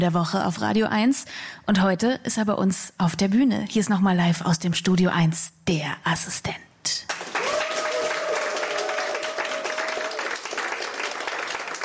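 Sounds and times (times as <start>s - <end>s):
speech: 0.0s - 7.4s
studio audience applause: 7.1s - 11.8s.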